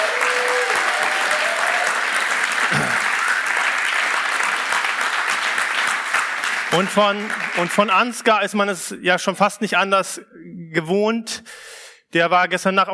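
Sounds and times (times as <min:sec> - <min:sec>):
church audience applause for the sound technician: 0:00.0 - 0:08.1
speech: 0:06.7 - 0:12.9.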